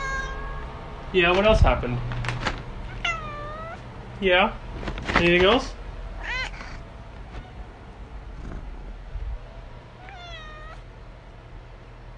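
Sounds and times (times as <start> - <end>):
cat meowing: 0.0 - 0.7, 2.8 - 3.9, 6.2 - 7.6, 10.0 - 10.9
low steady rumble: 0.0 - 12.1
speech: 1.1 - 2.3, 4.2 - 5.8.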